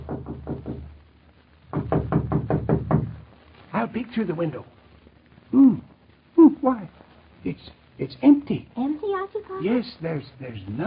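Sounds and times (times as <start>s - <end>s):
firm rapid knocking on a door: 0.0s - 0.9s, 1.7s - 3.2s
speech: 3.8s - 4.8s, 5.5s - 5.9s, 6.6s - 10.8s.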